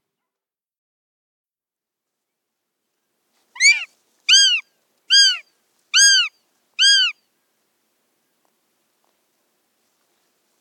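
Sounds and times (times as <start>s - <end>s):
northern goshawk harsh calls: 3.6s - 7.2s.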